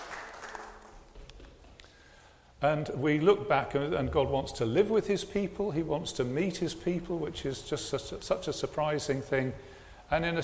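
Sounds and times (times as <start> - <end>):
crowd of people applauding: 0.0 - 1.1
speech: 2.6 - 10.4.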